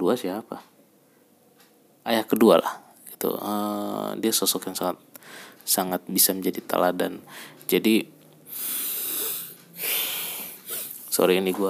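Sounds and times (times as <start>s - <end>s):
speech: 0.0s - 0.7s, 2.0s - 8.7s, 11.2s - 11.6s
heavy laboured wheezing breathing from a person short of breath: 5.2s - 5.6s, 7.2s - 7.7s, 8.4s - 11.1s.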